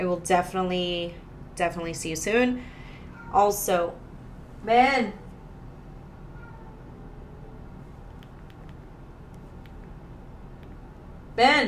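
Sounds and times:
speech: 0:00.1 - 0:04.0, 0:04.6 - 0:05.2, 0:11.4 - 0:11.6
cat meowing faintly: 0:03.1 - 0:03.5, 0:06.3 - 0:07.0
soft clicks and taps: 0:08.1 - 0:10.9.

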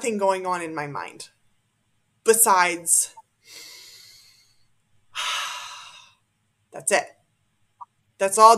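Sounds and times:
speech: 0:00.0 - 0:01.4, 0:02.3 - 0:03.7, 0:06.8 - 0:07.2, 0:08.2 - 0:08.5
slow breathing in and out during meditation: 0:03.4 - 0:06.3.

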